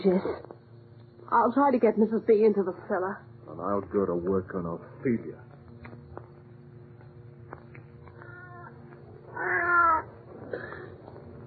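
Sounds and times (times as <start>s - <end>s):
speech: 0.0s - 0.5s, 1.3s - 5.5s
cat yowling meow: 8.2s - 10.1s.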